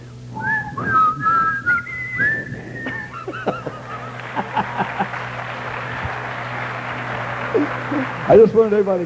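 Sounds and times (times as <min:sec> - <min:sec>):
steady low hum: 0:00.0 - 0:09.0
person whistling a slow hymn melody: 0:00.3 - 0:03.3
laughter: 0:02.8 - 0:06.6, 0:07.2 - 0:08.3
speech: 0:08.3 - 0:09.0.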